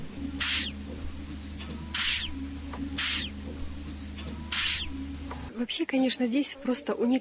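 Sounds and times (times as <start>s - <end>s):
low steady hum: 0.0s - 7.1s
giant hissing cockroaches hissing: 0.4s - 0.8s, 1.9s - 3.3s, 4.5s - 5.0s
speech: 5.6s - 7.1s.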